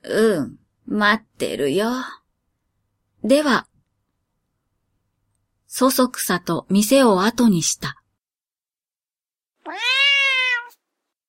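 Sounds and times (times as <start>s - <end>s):
speech: 0.1s - 2.2s, 3.2s - 3.7s, 5.7s - 8.0s
low-pitched drawn-out cat meow: 9.6s - 10.8s.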